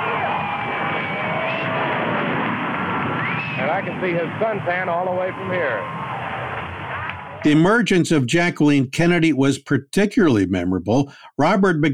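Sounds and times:
scattered shouts and whoops from crowd: 0:00.0 - 0:02.3
large crowd in sunshine roaring and yelling: 0:00.0 - 0:07.5
speech: 0:03.8 - 0:06.0, 0:07.4 - 0:11.9.

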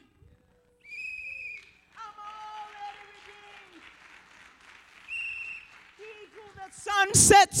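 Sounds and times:
loud shrill whistle blown into a microphone at a praise gathering: 0:00.8 - 0:01.8, 0:05.0 - 0:05.8
steady applause: 0:01.5 - 0:07.3.

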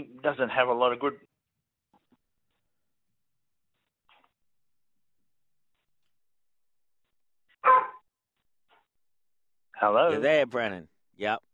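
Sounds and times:
speech: 0:00.0 - 0:01.3, 0:09.8 - 0:11.5
dog barking: 0:07.6 - 0:08.0.

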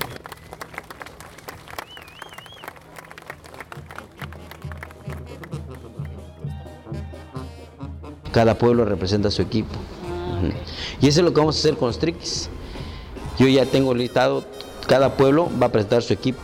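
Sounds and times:
crowd applauding to welcome a team of children: 0:00.0 - 0:06.2
wavering whistle: 0:01.8 - 0:02.8
speech: 0:08.4 - 0:12.6, 0:13.4 - 0:16.4.

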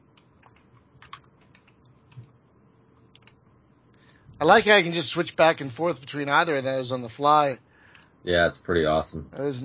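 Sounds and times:
low steady hum: 0:00.0 - 0:09.6
computer keyboard typing while playing a computer game: 0:00.2 - 0:02.3, 0:03.1 - 0:03.4
speech: 0:04.4 - 0:07.6, 0:08.2 - 0:09.6.

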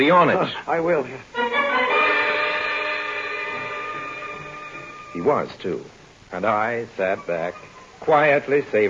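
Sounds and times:
speech: 0:00.0 - 0:01.6, 0:05.2 - 0:08.8
train rushing past: 0:01.6 - 0:05.9
long sustained train horn blast: 0:01.9 - 0:05.2.

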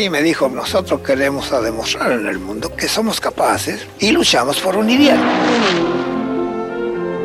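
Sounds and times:
speech: 0:00.0 - 0:06.1
racing car engine revving: 0:04.9 - 0:07.1.

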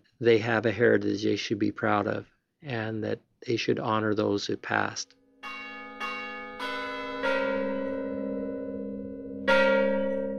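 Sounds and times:
speech: 0:00.2 - 0:05.2
mission church bells ringing: 0:05.4 - 0:10.3.

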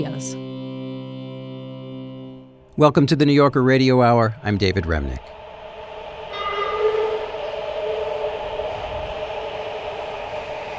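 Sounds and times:
speech: 0:02.8 - 0:05.4
subway train pulling into a station platform: 0:04.3 - 0:10.7
rising whining metallic hum of subway train motors and brakes: 0:05.2 - 0:10.7.

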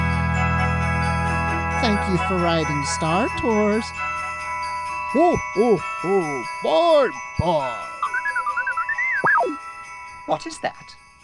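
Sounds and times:
bells ringing with bright sustained tones: 0:00.0 - 0:11.2
speech: 0:01.8 - 0:04.2, 0:05.1 - 0:07.9, 0:10.3 - 0:11.0
warbling pulsing chime: 0:01.8 - 0:10.3.

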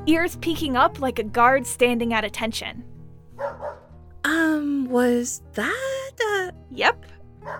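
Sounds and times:
speech: 0:00.0 - 0:07.5
large dog barking: 0:03.4 - 0:03.9.

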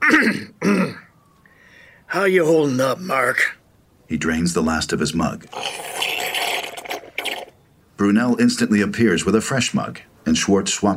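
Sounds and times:
person coughing roughly: 0:00.0 - 0:01.1
speech: 0:00.1 - 0:00.8, 0:02.1 - 0:06.1, 0:08.0 - 0:10.9.

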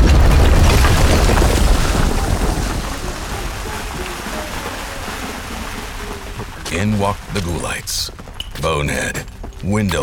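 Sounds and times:
garden center explosion blast: 0:00.0 - 0:03.8
speech: 0:07.0 - 0:10.0.

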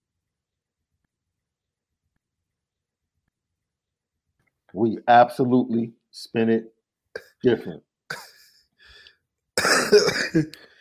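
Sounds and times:
speech: 0:04.7 - 0:06.7, 0:07.4 - 0:08.2, 0:09.9 - 0:10.7
raspy throat clearing with a rough cough: 0:08.1 - 0:08.4, 0:09.6 - 0:10.5.

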